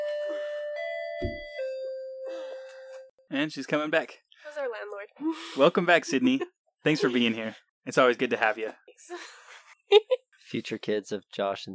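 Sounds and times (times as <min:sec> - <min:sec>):
doorbell chiming in a multi-tone ding-dong pattern: 0:00.0 - 0:03.1
brief low thump: 0:01.2 - 0:01.5
speech: 0:01.2 - 0:01.5, 0:03.3 - 0:11.7
laughter: 0:05.6 - 0:07.6.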